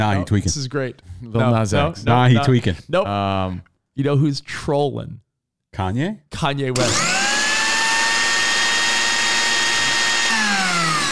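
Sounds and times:
speech: 0.0 - 7.2
ice cream machine motor whirring: 6.8 - 11.1.

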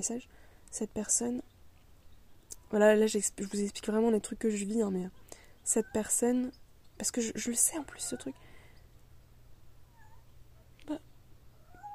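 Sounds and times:
speech: 0.0 - 1.5, 2.7 - 8.5
steady low hum: 0.0 - 11.9
small cat meowing: 9.9 - 10.3, 11.6 - 11.9.

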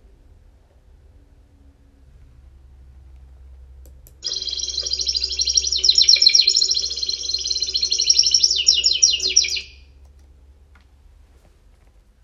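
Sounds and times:
faint low hum: 0.0 - 10.9
small bird chirping and trilling: 4.2 - 9.8.

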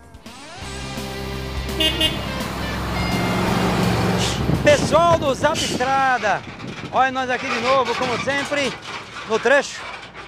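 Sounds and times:
heavy engine idling: 0.0 - 6.9
busy roadside traffic at a highway junction: 0.1 - 7.0
vehicle horn toot: 1.7 - 4.6
speech: 4.9 - 9.9.

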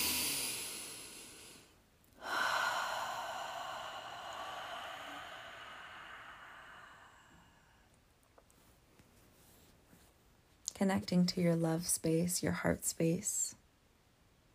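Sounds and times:
deep breathing during a hands-over-heart meditation: 0.0 - 8.0
speech: 10.8 - 13.6.

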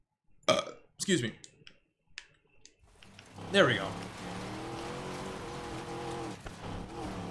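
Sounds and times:
speech: 0.5 - 1.5, 3.5 - 4.0
video game road and tire noise: 2.7 - 7.2
video game car engine droning: 2.8 - 7.2.

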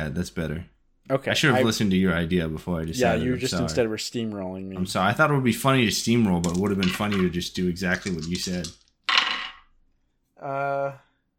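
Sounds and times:
speech: 0.0 - 8.8, 10.4 - 11.0
dice tumbling across a hard surface: 6.3 - 9.8.

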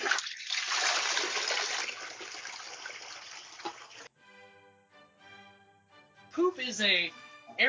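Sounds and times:
toilet flushing: 0.0 - 4.1
speech: 6.4 - 7.6.

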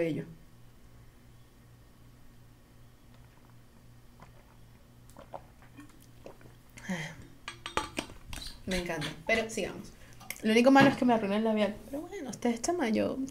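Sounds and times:
speech: 0.0 - 0.4, 8.7 - 13.2
steady low hum: 0.0 - 13.2
person sipping water: 3.1 - 9.4.

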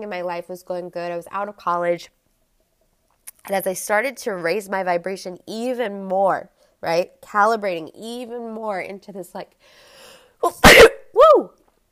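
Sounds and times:
speech: 0.0 - 2.2, 3.4 - 10.8
single loud human sneeze: 10.4 - 11.1.

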